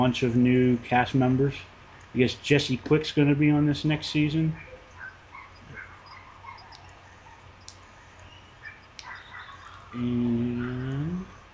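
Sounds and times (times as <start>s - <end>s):
speech: 0.0s - 4.7s, 10.0s - 10.2s
low hum: 0.0s - 11.5s
small dog yapping: 4.6s - 7.5s, 8.6s - 10.9s.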